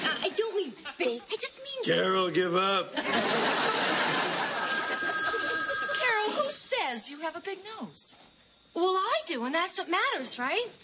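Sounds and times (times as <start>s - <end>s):
speech: 1.0s - 4.1s, 6.9s - 10.8s
laughter: 2.7s - 6.5s
telephone ringing with a sustained tonal trill: 4.0s - 6.7s.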